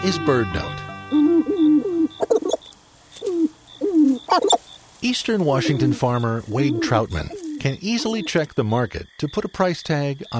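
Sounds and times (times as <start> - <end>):
speech: 0.0 - 1.3, 4.4 - 10.3
sharp-tailed grouse cooing and clucking: 1.1 - 4.7, 5.4 - 8.5.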